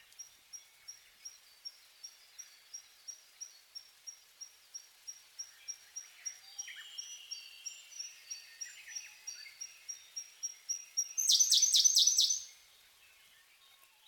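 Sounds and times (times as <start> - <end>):
Siberian blue robin song with high ticks and rattling trill: 5.4 - 12.6.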